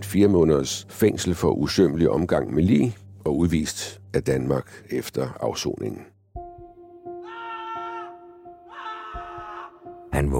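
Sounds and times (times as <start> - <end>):
speech: 0.1 - 6.1, 10.2 - 10.3
person wailing scream in a bathroom: 7.2 - 9.9.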